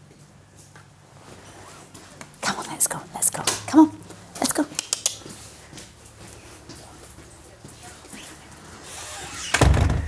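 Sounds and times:
quiet outdoor ambience: 0.0s - 10.0s
speech: 3.8s - 4.0s
front door being pushed shut: 9.0s - 10.0s.

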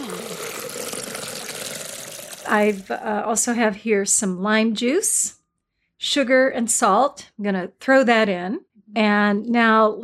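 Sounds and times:
cucumber juice pouring into a blender jug: 0.0s - 2.9s
speech: 2.5s - 5.4s, 6.0s - 10.0s.

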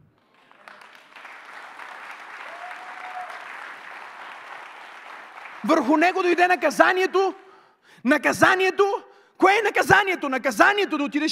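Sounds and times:
audience clapping: 0.0s - 7.6s
speech: 5.6s - 7.4s, 8.0s - 11.3s.

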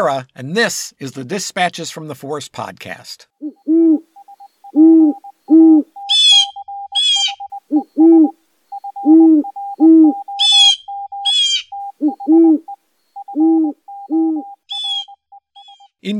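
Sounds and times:
speech: 0.0s - 4.0s
soft high piping notes: 3.4s - 15.8s
owls hooting in deep paired and triple hoots: 3.4s - 15.9s
shrill chittering calls: 3.4s - 16.0s.

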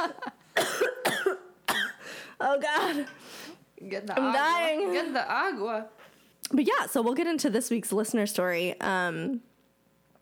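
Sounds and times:
harsh raspy coughing fit: 0.6s - 2.1s
speech: 2.4s - 9.5s.

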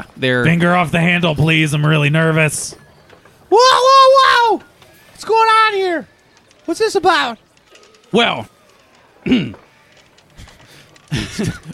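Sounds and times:
speech: 0.0s - 2.8s, 3.5s - 6.1s, 6.7s - 7.4s, 8.1s - 8.6s, 9.2s - 9.6s, 11.1s - 11.7s
person clearing throat: 9.2s - 9.6s
laughter: 10.4s - 11.7s.

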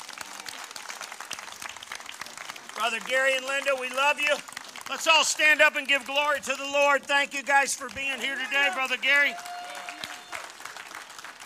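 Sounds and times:
audience applauding: 0.0s - 11.4s
speech: 2.8s - 9.5s.

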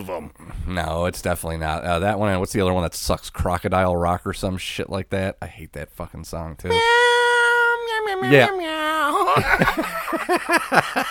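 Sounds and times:
speech: 0.0s - 7.2s, 8.2s - 11.0s
man imitating a cat meowing: 6.7s - 8.8s
laughter: 9.1s - 11.0s.

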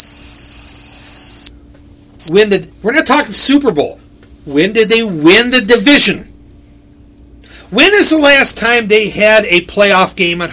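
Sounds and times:
crickets chirping sound effect: 0.0s - 1.5s
speech: 2.3s - 6.3s, 7.7s - 10.5s.

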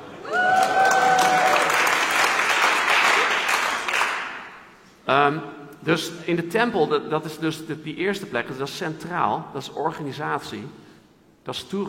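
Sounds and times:
room full of people applauding: 0.0s - 4.5s
speech: 5.2s - 10.8s, 11.4s - 11.8s.

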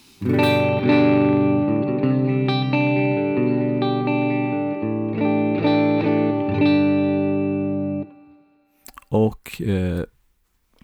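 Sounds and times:
electric guitar on middle pickup setting strumming a chord progression with effects: 0.0s - 8.3s
speech: 0.2s - 1.0s.

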